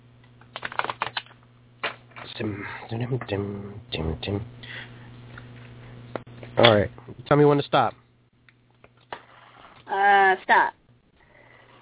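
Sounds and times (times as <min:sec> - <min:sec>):
low steady hum: 0:00.0 - 0:11.8
deck of animal cards being riffle shuffled: 0:00.4 - 0:02.3
speech: 0:02.4 - 0:04.7, 0:06.6 - 0:08.0, 0:10.4 - 0:10.8.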